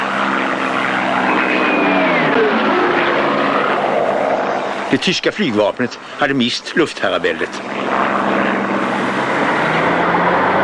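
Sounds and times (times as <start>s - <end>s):
whining tone sliding downward in pitch: 0.0s - 5.1s, 7.4s - 10.6s
Soviet fighter planes attacking with propeller engines roaring: 0.0s - 10.6s
speech: 4.9s - 8.4s.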